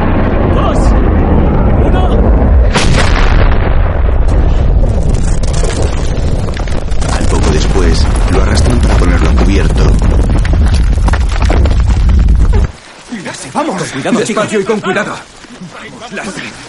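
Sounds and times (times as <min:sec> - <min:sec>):
heavy booming blasts during a military attack: 0:00.0 - 0:12.8
dense gunfire during a military attack: 0:02.2 - 0:12.3
speech: 0:14.0 - 0:16.6.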